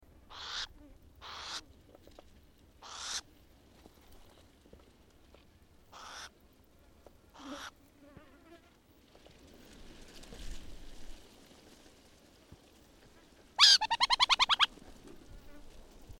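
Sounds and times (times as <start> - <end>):
Athene cunicularia rostrata burrowing owl calling: 0.3 - 1.6, 2.8 - 3.2, 5.9 - 6.3, 7.4 - 7.7, 13.6 - 14.7.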